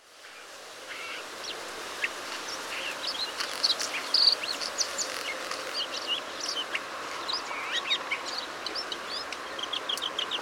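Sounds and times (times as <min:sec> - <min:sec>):
background hiss: 0:00.0 - 0:10.4
Bluethroat calls at Eilat in Israel: 0:02.0 - 0:05.9.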